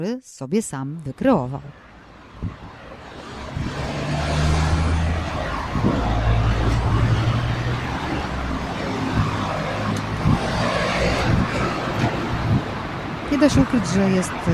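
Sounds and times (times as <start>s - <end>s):
speech: 0.0s - 2.6s, 13.3s - 14.5s
roar of road traffic in a busy city: 1.1s - 14.5s
airplanes droning over a busy city: 1.7s - 14.5s.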